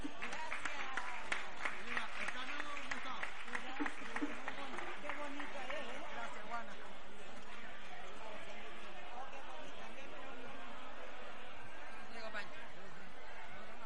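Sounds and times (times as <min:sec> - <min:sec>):
audience clapping: 0:00.0 - 0:06.6
voices chattering and calling out: 0:00.0 - 0:13.8.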